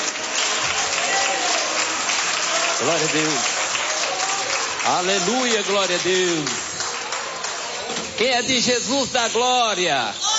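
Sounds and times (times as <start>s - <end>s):
church congregation applauding: 0.0s - 10.1s
speech: 2.8s - 3.5s, 4.8s - 6.6s, 8.2s - 10.3s.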